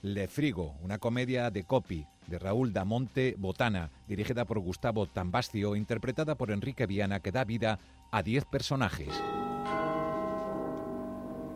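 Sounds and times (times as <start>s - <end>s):
speech: 0.0s - 9.4s
bell-like doorbell ring in a stage comedy: 9.1s - 11.5s.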